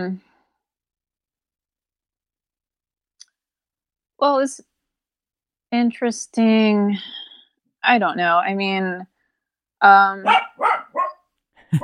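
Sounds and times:
speech: 0.0s - 0.3s, 4.2s - 4.7s, 5.7s - 9.1s, 9.8s - 10.7s
female dog barking: 10.2s - 11.2s.

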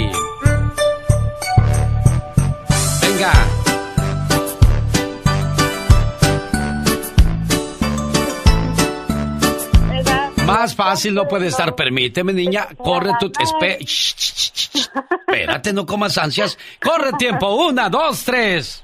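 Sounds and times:
bright upbeat Christmas song played from a recording: 0.0s - 17.7s
voice calling out one word: 10.0s - 13.9s, 14.8s - 15.7s, 16.4s - 17.6s
laughter: 10.7s - 11.8s, 14.6s - 17.7s
speech: 10.8s - 18.8s.

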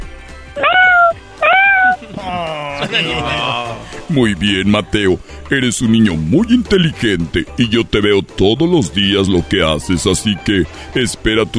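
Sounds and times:
child imitating a small cat's meow: 0.6s - 2.1s
laughter: 2.1s - 4.0s
speech: 2.8s - 11.5s.

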